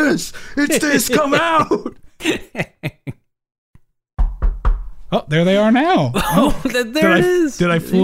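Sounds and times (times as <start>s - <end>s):
speech: 0.1s - 3.0s, 5.1s - 8.0s
laughter: 0.6s - 3.2s, 6.1s - 8.0s
heavy knocks on a door: 4.2s - 5.1s
loud thud: 4.2s - 5.1s.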